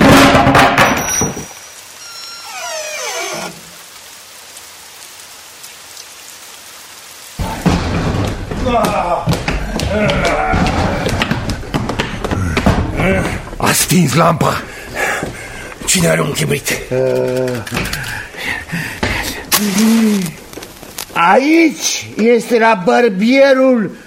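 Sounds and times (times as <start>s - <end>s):
door being broken down: 0.0s - 1.6s, 7.4s - 13.4s
hissing rain-like noise: 0.0s - 24.0s
speech: 13.9s - 14.7s, 15.9s - 19.0s, 19.6s - 20.4s, 21.2s - 24.0s.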